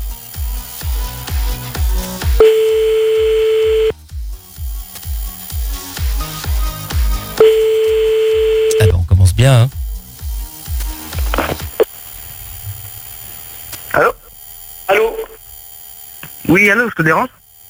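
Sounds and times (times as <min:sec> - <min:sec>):
rhythmic thumping pulse: 0:00.0 - 0:16.4
telephone ringback tone while an outgoing call is placed: 0:02.4 - 0:03.9, 0:07.4 - 0:08.9
speech: 0:16.7 - 0:17.4.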